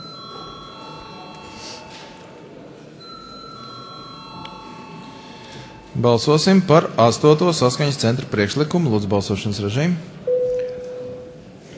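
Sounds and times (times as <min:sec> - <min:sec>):
electric bell rung in a parliament chamber to call a vote: 0:00.0 - 0:02.3, 0:03.0 - 0:06.0
murmuring voices: 0:00.0 - 0:09.8
speech: 0:06.0 - 0:10.2.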